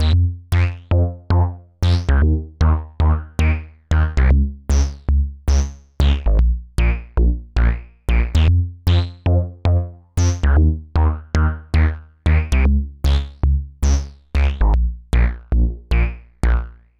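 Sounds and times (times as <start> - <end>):
Model 15 bass synthesizer: 0.0 - 16.9.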